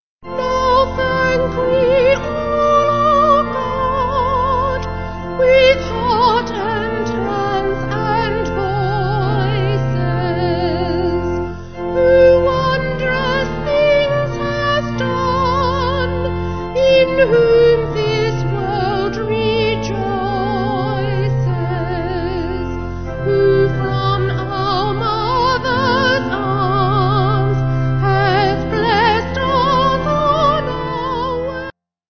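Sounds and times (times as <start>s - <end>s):
vocal organ hymn: 0.2s - 31.8s.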